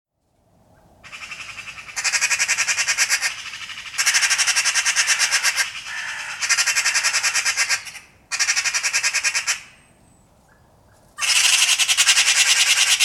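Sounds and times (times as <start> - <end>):
Eurasian magpie Pica pica giving harsh rattling chatters: 1.1 - 9.4, 11.2 - 13.0.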